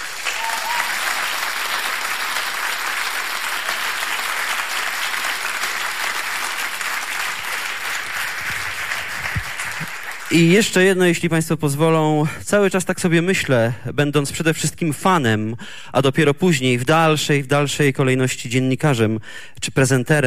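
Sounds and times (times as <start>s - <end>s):
audience applause at a concert: 0.0s - 10.5s
speech: 10.3s - 20.2s.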